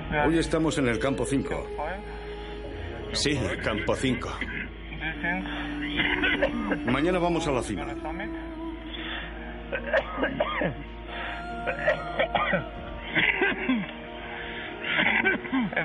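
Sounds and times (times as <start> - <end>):
speech: 0.1 - 2.3, 3.1 - 8.5, 9.7 - 10.9, 11.7 - 13.9, 15.3 - 15.8
people coughing and clearing throats at high altitude camp: 5.8 - 6.9, 9.7 - 10.9, 11.5 - 14.1, 14.8 - 15.8.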